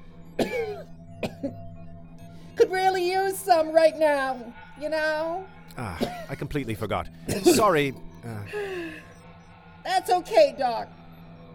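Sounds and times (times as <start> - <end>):
low steady hum: 0.0 - 11.5
person coughing: 0.4 - 1.6, 5.8 - 6.4, 7.3 - 7.8
speech: 3.0 - 9.0, 9.8 - 11.0.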